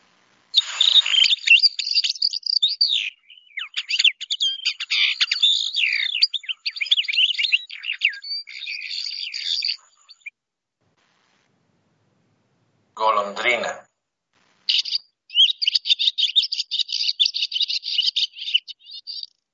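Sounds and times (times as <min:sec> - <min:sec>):
mockingbird imitating a goldfinch's song: 0:00.6 - 0:10.3, 0:14.7 - 0:19.4.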